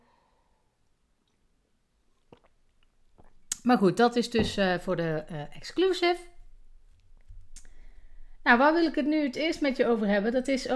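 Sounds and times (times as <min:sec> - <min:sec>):
person sipping a drink: 0:01.1 - 0:03.6
swallowing: 0:02.1 - 0:03.6
soft wet mouth clicks: 0:02.1 - 0:03.7, 0:07.5 - 0:07.8
speech: 0:03.6 - 0:06.4, 0:08.4 - 0:10.7.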